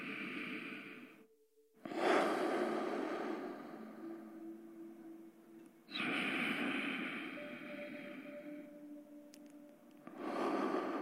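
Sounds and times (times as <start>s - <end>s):
slow deep breaths in a guided meditation: 0.0s - 5.2s, 5.8s - 11.0s.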